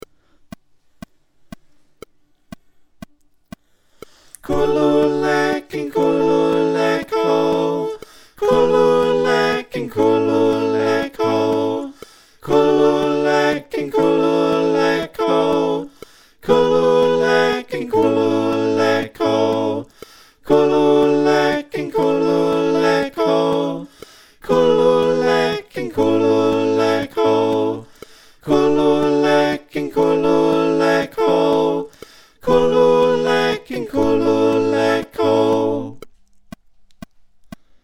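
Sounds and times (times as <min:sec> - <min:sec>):
SATB backing chant: 0:04.4 - 0:36.0.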